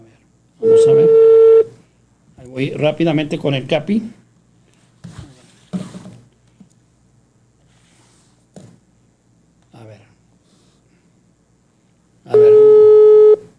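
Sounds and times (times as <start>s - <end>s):
speech: 0.6s - 1.2s, 2.6s - 4.2s
telephone busy signal while a call is being dialed: 0.6s - 1.7s, 12.3s - 13.4s.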